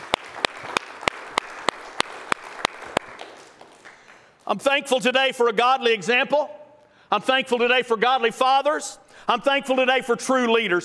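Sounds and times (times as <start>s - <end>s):
church audience applauding: 0.0s - 4.4s
sharp evenly spaced claps in a steady rhythm: 0.0s - 4.6s
speech: 4.5s - 10.8s.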